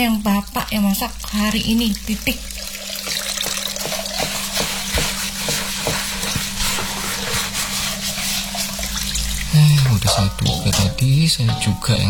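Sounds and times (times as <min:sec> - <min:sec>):
speech: 0:00.0 - 0:02.7, 0:09.5 - 0:12.0
food frying in a wok: 0:00.0 - 0:11.2
utensil scraping and stirring food in a wok: 0:03.5 - 0:12.0.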